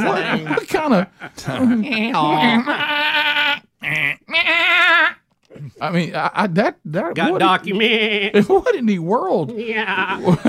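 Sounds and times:
laughter: 0.0 - 3.0, 9.6 - 10.4
speech: 0.0 - 5.0, 5.6 - 10.4
goat bleating: 1.7 - 5.3, 7.4 - 8.4, 9.5 - 10.3.

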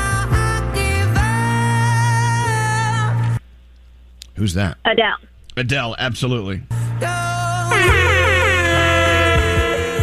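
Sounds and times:
music: 0.0 - 3.4, 6.7 - 10.0
speech: 4.4 - 8.1
air horn blast: 7.6 - 10.0.

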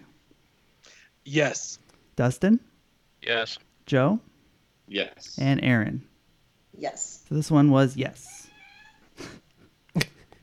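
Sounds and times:
speech: 1.3 - 4.3, 4.9 - 6.1, 6.8 - 8.4, 9.2 - 9.4
cat meowing: 8.3 - 9.1.

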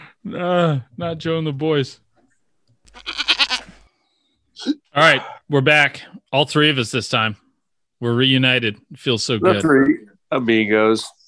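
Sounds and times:
speech: 0.2 - 2.0, 2.9 - 3.2, 4.6 - 7.4, 8.0 - 11.2
goat bleating: 2.9 - 3.9.

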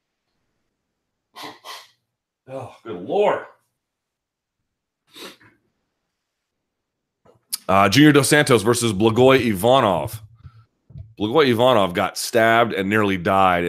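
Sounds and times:
person blowing their nose: 1.4 - 2.0, 5.1 - 5.5
speech: 2.5 - 3.5, 7.7 - 10.3, 11.2 - 13.6.

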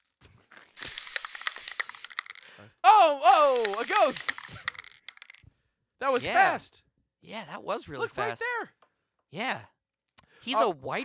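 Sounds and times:
spray paint can hissing while being spun: 0.7 - 2.4, 3.2 - 5.4, 6.0 - 6.5
mechanical rattle: 0.8 - 2.5, 3.2 - 5.4, 6.0 - 6.4
speech: 3.0 - 4.4, 6.0 - 9.7, 10.4 - 11.0.

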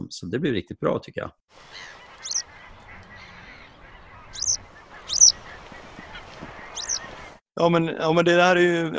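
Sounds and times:
speech: 0.1 - 2.0, 7.6 - 8.9
high wagtail-like bird flight calls with rolling r-quality: 1.6 - 7.4.

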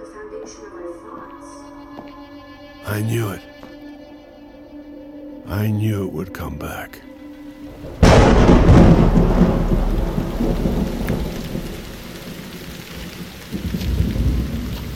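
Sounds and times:
speech: 2.8 - 3.5, 5.5 - 7.1
steady rain during a powerful afternoon storm: 7.6 - 14.9
thunder of a powerful afternoon storm: 7.7 - 14.9.

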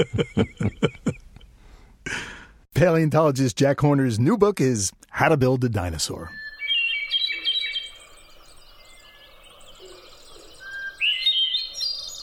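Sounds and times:
speech: 0.0 - 0.5, 2.8 - 6.4
laughter: 0.0 - 1.4
songbird singing: 6.0 - 12.2.

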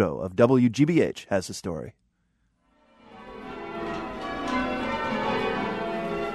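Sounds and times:
speech: 0.0 - 2.0
church bells of the church in Chagford Devon England ringing a peal: 2.9 - 6.3.

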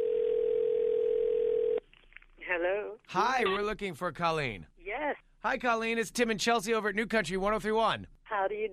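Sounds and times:
telephone dial tone before call connects: 0.0 - 1.8
speech: 2.6 - 8.7.

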